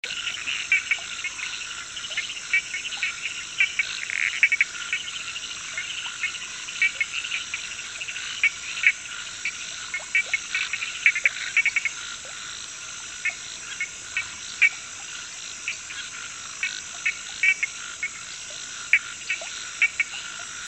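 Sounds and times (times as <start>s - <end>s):
Sphaenorhynchus lacteus frog calling: 0.0s - 20.6s.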